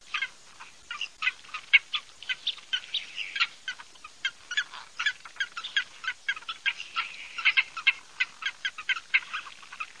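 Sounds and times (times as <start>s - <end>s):
ferruginous duck calling: 0.0s - 9.9s.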